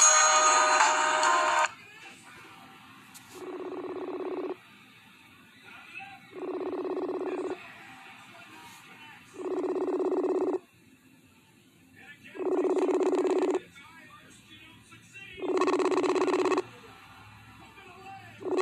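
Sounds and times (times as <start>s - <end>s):
ringback tones from an outgoing phone call: 0.0s - 1.7s, 3.4s - 4.6s, 6.4s - 7.6s, 9.4s - 10.6s, 12.4s - 13.6s, 15.4s - 16.6s, 18.4s - 18.6s.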